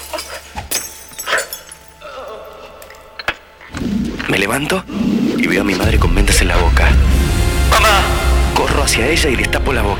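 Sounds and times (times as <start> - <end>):
mirror glass shattering: 0.0 - 3.0
scattered mirror glass fragments tinkling: 0.0 - 3.1
speech: 4.4 - 7.2, 8.0 - 9.9.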